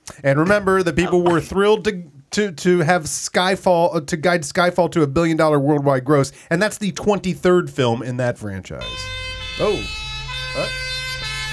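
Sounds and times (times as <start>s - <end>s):
speech: 0.2s - 10.8s
rising-and-falling ambulance siren wailing: 8.8s - 11.5s
steady tonal hum: 8.8s - 11.5s.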